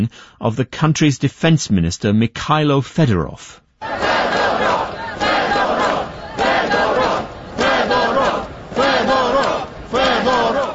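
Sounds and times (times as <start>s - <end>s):
speech: 0.0s - 4.4s
large protest crowd of mainly young people chanting in Kyiv: 3.8s - 10.7s.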